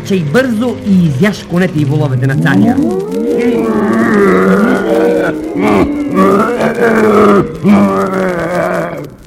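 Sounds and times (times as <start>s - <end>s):
speech: 0.1s - 9.0s
bear growling and roaring: 2.2s - 9.2s.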